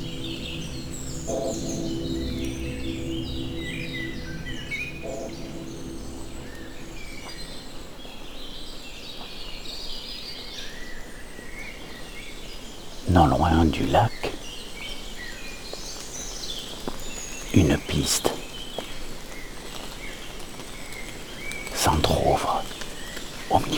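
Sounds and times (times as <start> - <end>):
steady low rumble of noise: 0.0 - 7.9
chorus of forest birds chirping and trilling in the Creuse: 0.0 - 23.7
speech: 1.3 - 2.2, 13.2 - 14.1, 18.0 - 18.4.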